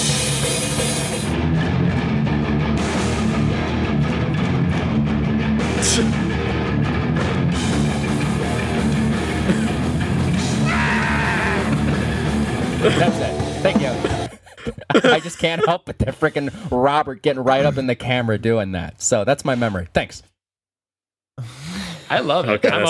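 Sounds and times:
loud dense rock song with distorted full band: 0.0 - 14.3
singer's raw sustained scream: 10.5 - 11.9
laughter: 11.0 - 12.1, 12.7 - 16.8, 17.4 - 17.9, 22.1 - 22.8
speech: 15.4 - 20.3, 21.4 - 22.8.

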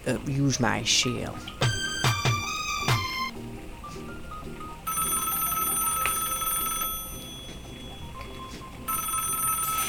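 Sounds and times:
speech: 0.0 - 1.6
telephone bell ringing: 1.6 - 3.3, 4.8 - 9.8.

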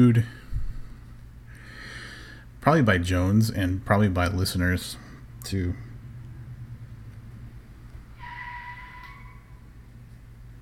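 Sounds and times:
speech: 0.0 - 0.4, 2.6 - 5.9
car engine rumbling: 5.2 - 8.3
car brakes screeching: 8.0 - 9.7.

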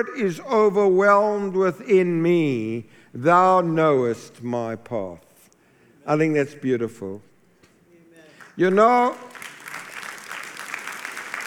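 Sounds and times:
speech: 0.0 - 5.3, 6.1 - 7.3, 8.6 - 9.3
audience clapping at a stage event: 8.4 - 11.4.

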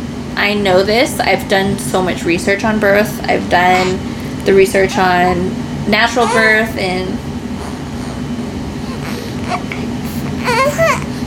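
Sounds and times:
steady low hum: 0.0 - 11.2
speech: 0.4 - 7.2, 10.7 - 11.1
fussy baby babbling and crying: 3.6 - 4.0, 6.0 - 6.8, 7.6 - 11.2.

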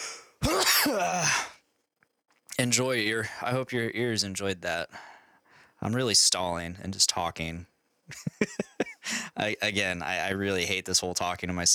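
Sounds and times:
person sneezing: 0.0 - 1.5
speech: 2.6 - 5.1, 5.8 - 11.7
laughter: 8.1 - 9.5.

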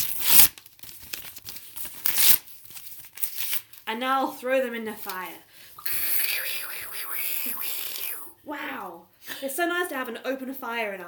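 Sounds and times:
paper crinkling and rustling: 0.3 - 3.8
speech: 3.9 - 6.0, 8.5 - 11.0.

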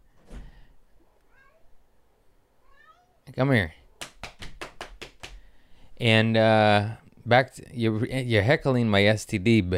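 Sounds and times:
faint room noise: 0.0 - 9.7
cat meowing: 1.3 - 1.7, 2.6 - 3.2
speech: 3.3 - 3.8, 6.0 - 9.7.

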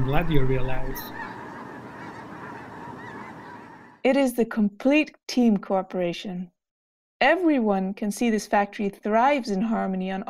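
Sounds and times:
speech: 0.0 - 1.3, 4.0 - 6.5, 7.2 - 10.2
flock of birds honking: 0.0 - 4.0.

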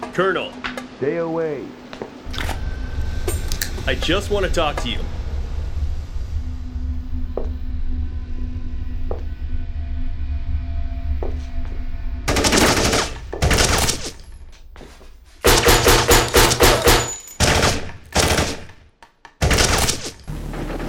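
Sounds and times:
low steady hum: 0.0 - 18.2
speech: 0.2 - 2.5, 3.9 - 5.2
gunfire fired from inside a house: 12.3 - 14.1, 15.4 - 18.8, 19.4 - 20.2.

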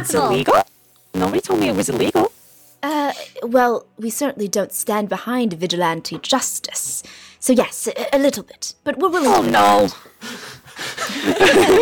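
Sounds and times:
speech: 0.0 - 2.4, 3.4 - 11.7
heavy breathing with ragged wheezy exhales: 7.0 - 7.4, 10.0 - 11.3
laughter: 10.3 - 11.7.

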